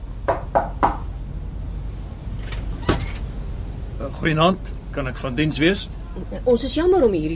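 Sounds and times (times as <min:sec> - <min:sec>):
steady low rumble: 0:00.0 - 0:07.3
knocking on a wooden cabin door: 0:00.3 - 0:01.1
speech: 0:04.0 - 0:07.3.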